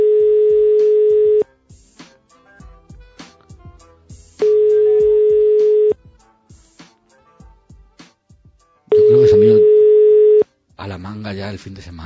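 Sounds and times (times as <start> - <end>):
telephone ringback tone after dialing a random number: 0.0 - 1.4, 4.4 - 6.0, 8.9 - 10.4
speech: 11.3 - 12.0.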